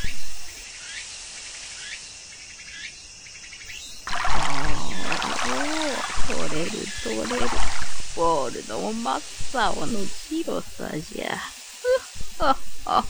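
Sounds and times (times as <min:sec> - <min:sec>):
water pouring for washing: 0:03.9 - 0:11.4
speech: 0:06.3 - 0:11.6, 0:12.4 - 0:13.0.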